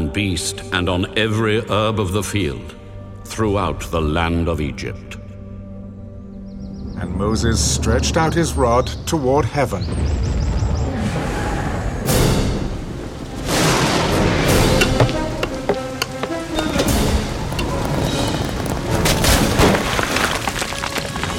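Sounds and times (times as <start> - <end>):
speech: 0.2 - 5.2, 7.0 - 10.4
thunder rumbling during a storm of hail and fire: 9.8 - 20.6
dense steady roar of heavy rain or hail: 12.2 - 21.3.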